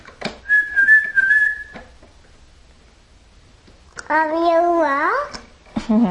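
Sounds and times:
person whistling a short steady tune: 0.5 - 1.8
speech: 4.1 - 5.3, 5.9 - 6.0.

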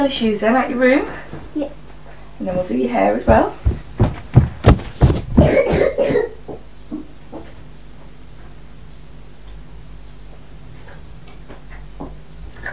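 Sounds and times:
speech: 0.0 - 1.8, 2.4 - 3.6
person coughing: 5.4 - 6.4.

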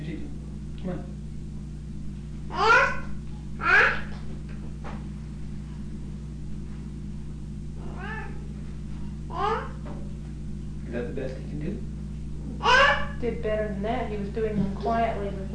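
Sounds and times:
steady low hum: 0.0 - 15.5
speech: 0.8 - 1.1, 13.4 - 15.4
cat meowing: 7.8 - 8.4.

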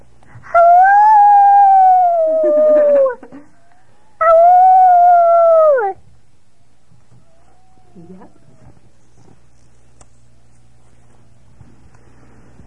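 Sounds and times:
person imitating a dog howling at the moon: 0.5 - 6.0.

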